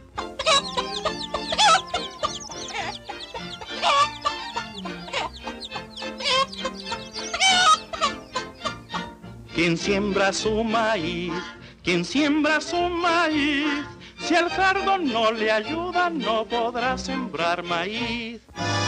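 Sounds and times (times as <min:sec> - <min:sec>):
cartoon hen clucking and squawking: 0:00.0 - 0:09.3
speech: 0:09.6 - 0:18.5.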